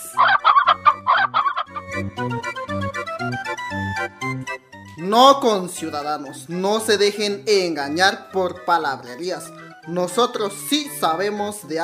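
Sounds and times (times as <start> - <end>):
bouncy rhythmic tune with a steady bass line: 0.0 - 11.8
chicken clucking: 0.2 - 2.0
speech: 5.1 - 11.8.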